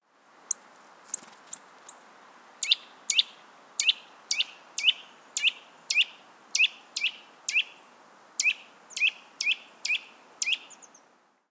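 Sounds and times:
Eurasian nuthatch Sitta europaea calling with sharp downslurred whistled notes: 0:02.6 - 0:07.8, 0:08.4 - 0:11.0.

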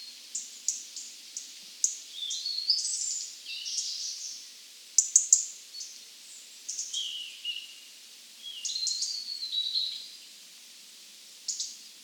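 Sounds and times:
European robin Erithacus rubecula singing: 0:00.0 - 0:04.4, 0:06.7 - 0:07.8, 0:08.4 - 0:10.1, 0:11.5 - 0:11.8
soft hiss: 0:00.0 - 0:12.0.

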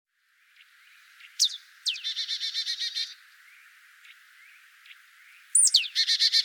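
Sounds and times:
Poecile palustris marsh tit pitchoo calls: 0:01.2 - 0:03.2, 0:05.5 - 0:06.4.

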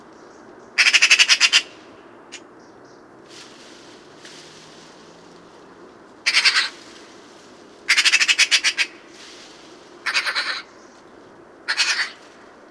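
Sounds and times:
Pica pica Eurasian magpie rattling chatter calls: 0:00.8 - 0:01.7, 0:06.3 - 0:06.8, 0:07.9 - 0:09.1, 0:10.0 - 0:10.8, 0:11.7 - 0:12.2.

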